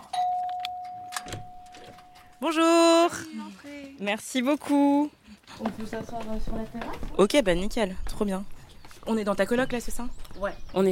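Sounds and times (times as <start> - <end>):
electronic doorbell ringing with a sustained tone: 0.0 - 3.0
speech: 2.4 - 10.9.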